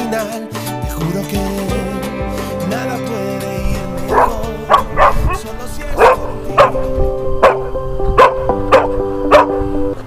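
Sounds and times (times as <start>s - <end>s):
soft music: 0.0s - 10.0s
speech: 0.2s - 1.6s
guard dog at a municipal hospital in San Carlos barking: 4.1s - 6.8s, 7.4s - 9.6s.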